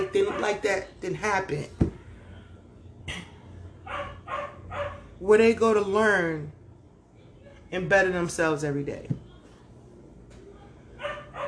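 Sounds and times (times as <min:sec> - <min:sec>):
speech: 0:00.2 - 0:01.8, 0:05.2 - 0:06.6, 0:07.7 - 0:09.2
dog barking: 0:03.8 - 0:05.1, 0:11.0 - 0:11.4.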